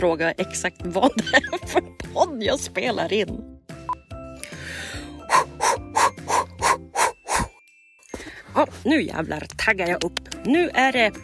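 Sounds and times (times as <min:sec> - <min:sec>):
speech: 0:00.0 - 0:03.5, 0:05.3 - 0:05.5, 0:08.6 - 0:11.2
longer noisy inhale: 0:04.4 - 0:08.5
person imitating loud exaggerated sniffing: 0:05.2 - 0:07.6.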